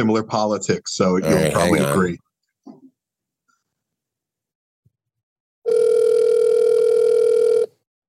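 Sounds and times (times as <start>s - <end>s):
speech: 0.0s - 2.2s
electronic phone ringing tone of an outgoing call: 5.7s - 7.7s.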